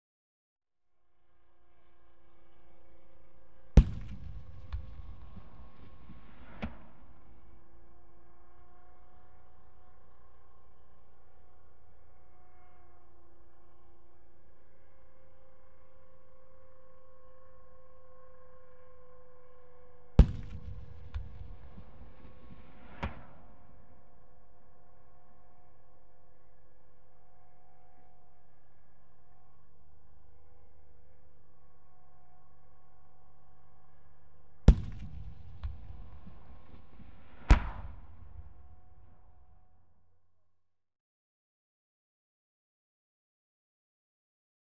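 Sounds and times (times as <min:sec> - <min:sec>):
distant Scorpion weapon firing HESH rounds in warfare: 0:03.8 - 0:07.0, 0:20.2 - 0:23.4, 0:34.7 - 0:39.4.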